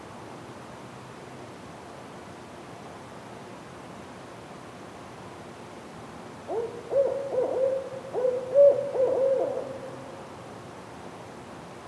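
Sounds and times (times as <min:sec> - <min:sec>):
owl giving a drawn-out steady hoot: 0:06.5 - 0:10.2.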